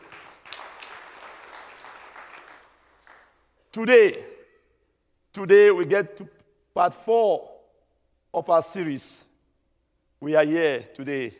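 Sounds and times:
audience clapping: 0.0 - 3.6
speech: 3.7 - 4.3, 5.3 - 7.5, 8.4 - 9.3, 10.2 - 11.3.

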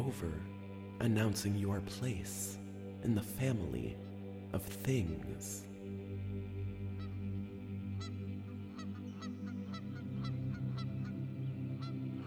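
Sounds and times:
speech: 0.0 - 6.0
flock of wild geese honking: 7.0 - 12.2.

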